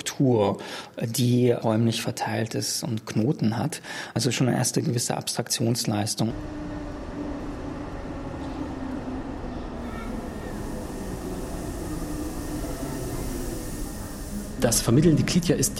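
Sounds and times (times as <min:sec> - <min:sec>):
speech: 0:00.2 - 0:06.9, 0:14.6 - 0:15.7
S-Bahn train arriving at a station platform: 0:06.3 - 0:15.7.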